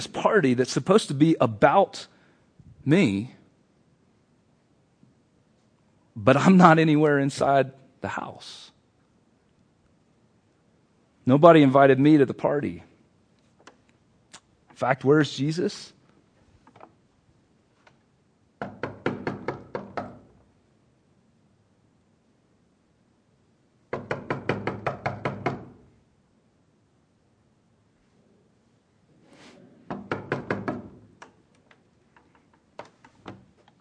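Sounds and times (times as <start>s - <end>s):
speech: 0.0s - 2.1s, 2.8s - 3.4s, 6.2s - 8.7s, 11.2s - 12.9s, 14.8s - 16.0s
rapid firm knocking on a door: 18.6s - 20.2s, 23.9s - 25.8s, 29.9s - 31.0s.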